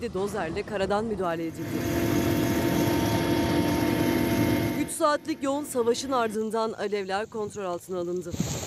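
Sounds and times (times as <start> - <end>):
speech: 0.0 - 2.4, 5.0 - 8.5
firefighting planes and helicopters droning overhead: 0.5 - 7.4.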